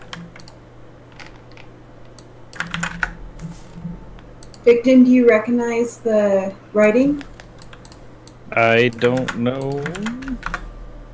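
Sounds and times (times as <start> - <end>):
typing on a computer keyboard for a quick web search: 0.0 - 0.6, 1.2 - 3.1, 7.4 - 8.0, 9.0 - 10.6
speech: 4.7 - 7.3, 8.6 - 10.5.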